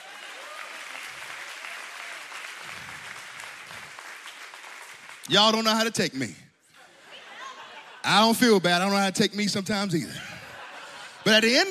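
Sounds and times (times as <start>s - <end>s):
audience clapping: 0.0s - 6.1s
speech: 5.3s - 6.4s, 8.1s - 10.3s, 11.2s - 11.6s
laughter: 6.7s - 8.9s, 10.0s - 11.6s.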